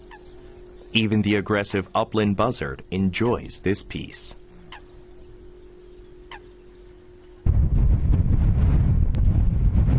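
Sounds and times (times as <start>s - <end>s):
speech: 0.9s - 4.4s
strong wind gusting against the microphone: 7.4s - 9.9s.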